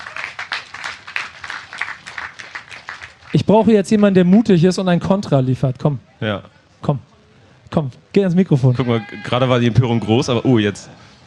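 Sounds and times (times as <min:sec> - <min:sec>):
audience applause: 0:00.0 - 0:04.6
speech: 0:03.3 - 0:07.1, 0:07.7 - 0:11.1.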